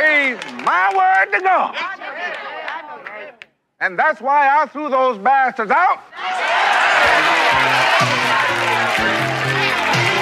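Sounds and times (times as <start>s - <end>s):
movie audience crowd cheering and clapping: 0.0s - 3.3s, 6.2s - 10.1s
speech: 0.7s - 2.4s, 3.8s - 6.2s.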